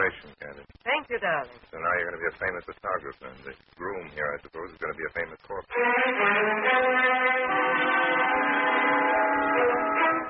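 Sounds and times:
speech: 0.1 - 8.6
train horn droning at a train station: 6.7 - 10.2.

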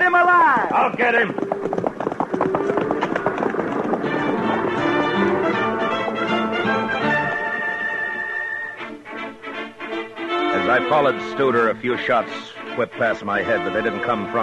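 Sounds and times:
herd of cattle stampeding with pounding hooves: 0.0 - 8.4
speech: 0.8 - 1.8, 10.8 - 14.4
loud sustained dramatic music: 4.0 - 14.4.

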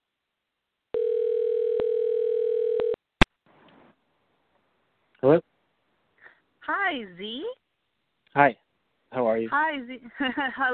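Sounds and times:
telephone dial tone: 1.0 - 3.0
speech: 6.9 - 7.6, 8.4 - 8.6, 9.4 - 10.7.

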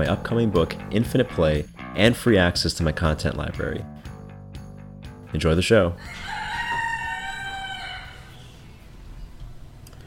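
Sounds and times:
speech: 0.0 - 3.9, 5.3 - 6.3
rooster crowing: 6.0 - 8.6.

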